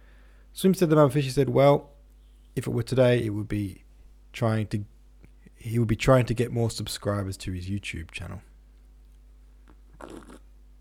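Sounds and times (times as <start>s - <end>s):
speech: 0.6s - 1.9s, 2.6s - 3.8s, 4.4s - 4.9s, 5.6s - 8.5s, 10.0s - 10.4s
faint mouth click: 9.1s - 10.4s
wet slurp of a cappuccino: 9.7s - 10.5s.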